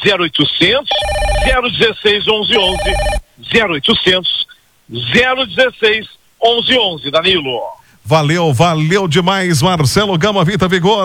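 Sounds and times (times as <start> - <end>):
speech: 0.0 - 11.0
telephones ringing on order lines for a product kit: 0.9 - 3.3.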